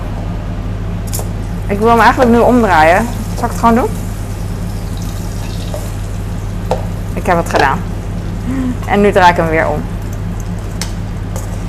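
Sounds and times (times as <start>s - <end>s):
low hum: 0.0s - 11.6s
speech: 1.7s - 4.0s, 7.2s - 7.9s, 8.5s - 9.9s
seasoned marinated meat sizzling in a frying pan: 2.3s - 8.4s.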